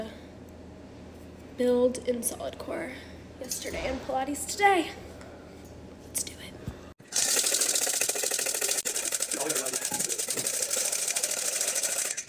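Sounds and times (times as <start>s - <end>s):
speech: 1.6s - 5.1s
hand whisk beating a mixture in a bowl until foamy: 7.1s - 12.2s.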